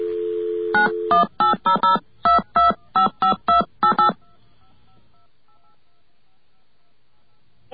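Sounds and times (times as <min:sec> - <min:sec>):
touch-tone beeps dialing a toll-free number: 0:00.7 - 0:04.4.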